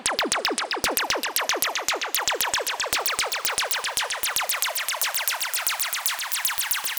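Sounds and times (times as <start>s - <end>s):
laser sound effect: 0.1s - 6.9s.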